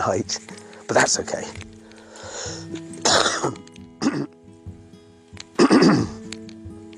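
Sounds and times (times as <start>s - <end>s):
speech: 0.0s - 1.7s
person coughing harshly: 3.0s - 4.3s, 5.6s - 6.2s.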